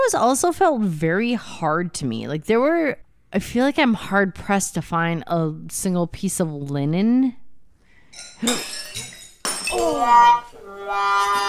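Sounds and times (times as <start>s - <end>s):
speech: 0.1s - 7.4s, 8.2s - 9.1s, 9.7s - 11.4s
wine glasses knocked over by a dog: 8.1s - 10.0s
glass breaking: 8.2s - 10.0s.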